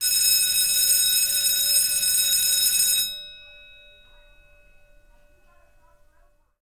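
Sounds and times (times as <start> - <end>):
distant school bell ringing: 0.0 - 6.6.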